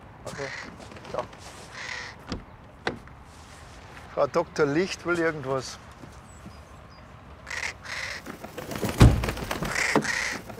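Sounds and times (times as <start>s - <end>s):
crow cawing in harsh raspy bursts: 0.3s - 0.9s, 1.6s - 2.4s, 7.4s - 8.4s, 9.5s - 10.5s
speech: 0.3s - 1.6s, 4.2s - 5.9s
dull thump: 8.8s - 10.1s.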